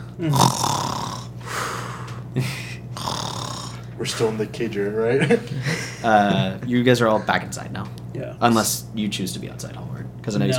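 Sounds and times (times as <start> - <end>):
speech: 0.2 - 0.9, 2.3 - 2.7, 4.0 - 10.5
person imitating snoring with their voice: 0.2 - 1.8, 3.0 - 3.9
laughter: 5.0 - 6.7.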